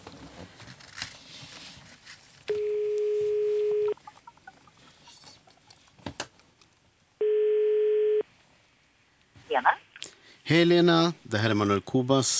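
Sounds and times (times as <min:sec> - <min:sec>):
telephone ringback tones of a phone call being placed: 0:02.5 - 0:04.0, 0:07.2 - 0:08.2
speech: 0:09.6 - 0:09.8, 0:10.5 - 0:12.3.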